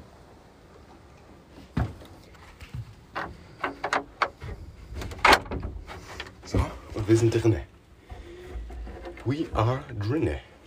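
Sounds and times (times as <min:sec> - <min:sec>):
door being pulled shut with scraping bumps and rattles: 0:03.1 - 0:10.1
speech: 0:07.1 - 0:07.7, 0:09.3 - 0:10.5.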